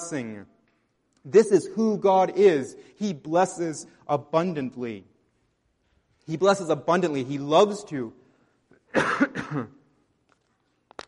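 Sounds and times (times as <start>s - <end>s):
speech: 0.1s - 0.6s, 1.2s - 5.1s, 6.3s - 8.2s, 8.9s - 9.8s
person coughing harshly: 8.8s - 9.9s
throat clearing: 8.9s - 9.8s.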